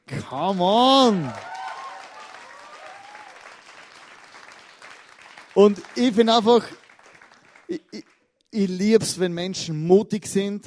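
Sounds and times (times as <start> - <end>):
crowd applause: 0.2 - 8.2
speech: 0.3 - 1.5, 5.6 - 6.8, 7.7 - 10.6
people whooping: 0.8 - 3.6.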